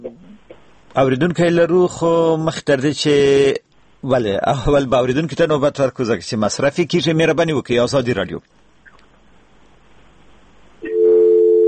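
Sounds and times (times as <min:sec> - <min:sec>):
speech: 0:01.0 - 0:08.6
electronic telephone busy tone after a call is cut off: 0:10.8 - 0:11.6.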